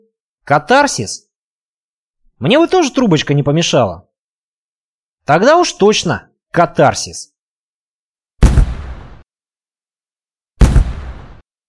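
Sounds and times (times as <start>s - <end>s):
speech: 0.1s - 1.3s, 2.4s - 4.1s, 5.3s - 7.3s
blast packets set off in a yard: 8.4s - 9.2s, 10.6s - 11.4s.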